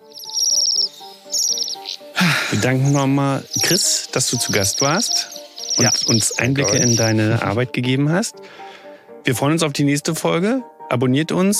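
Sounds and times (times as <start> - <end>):
Bohemian waxwing buzzing trill calls: 0.0 - 7.4
speech: 2.5 - 11.5.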